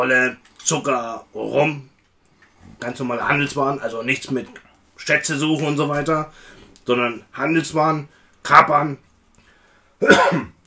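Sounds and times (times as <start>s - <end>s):
speech: 0.0s - 1.9s, 2.7s - 9.1s, 10.0s - 10.6s
person sneezing: 10.0s - 10.6s.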